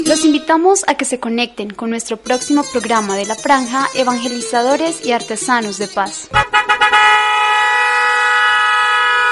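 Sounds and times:
speech: 0:00.1 - 0:07.1
chiva bus horn honking: 0:02.3 - 0:09.2.

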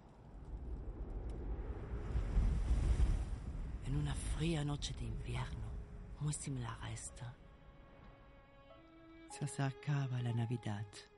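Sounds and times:
howling wind in a film soundtrack: 0:00.0 - 0:07.8
speech: 0:03.9 - 0:07.4, 0:09.4 - 0:11.1.

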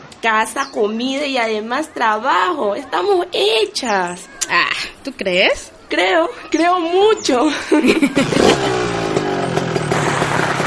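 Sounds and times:
speech: 0:00.2 - 0:09.0
laughter: 0:07.4 - 0:09.0
large motorcycle arriving and revving: 0:07.8 - 0:10.6.

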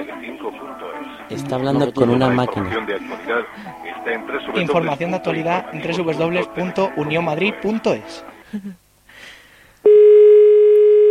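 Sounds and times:
speech: 0:01.3 - 0:08.8
telephone call tone on an unanswered line: 0:09.8 - 0:11.0.

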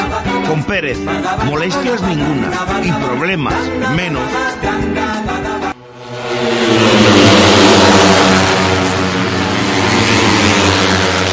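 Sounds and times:
speech: 0:00.5 - 0:05.5
motorcycle engines revving together: 0:05.8 - 0:11.3.

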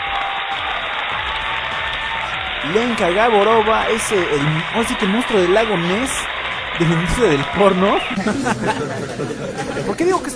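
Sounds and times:
applause: 0:00.0 - 0:08.2
speech: 0:02.6 - 0:10.3
laughter: 0:06.8 - 0:10.3.

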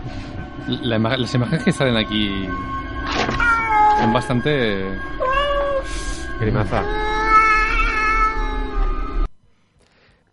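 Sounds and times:
speech: 0:00.6 - 0:03.4, 0:04.0 - 0:07.0
cat meowing and caterwauling: 0:03.4 - 0:04.1, 0:05.2 - 0:05.8, 0:06.8 - 0:09.3.

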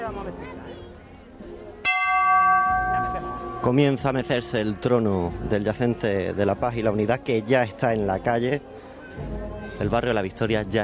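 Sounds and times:
murmur of crowd voices: 0:00.0 - 0:10.8
speech: 0:00.1 - 0:01.0, 0:03.6 - 0:10.8
procession float bell struck: 0:01.9 - 0:04.6.

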